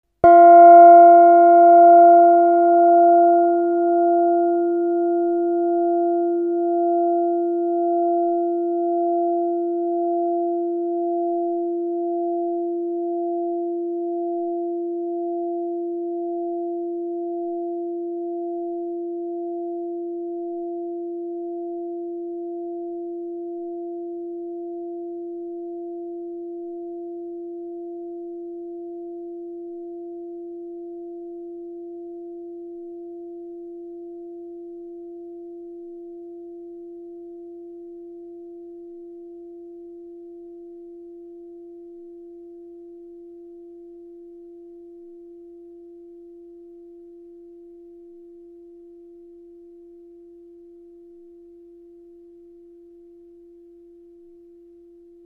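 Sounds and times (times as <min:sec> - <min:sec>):
oblong gong: 0:00.2 - 0:14.1.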